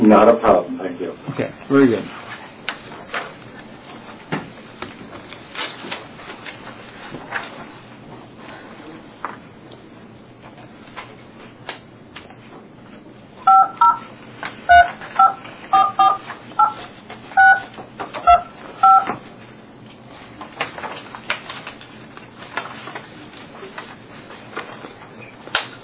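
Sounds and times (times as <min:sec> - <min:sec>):
speech: 0:00.1 - 0:02.2
touch-tone telephone dialing beeps: 0:13.5 - 0:14.1, 0:14.7 - 0:16.8, 0:17.4 - 0:19.1.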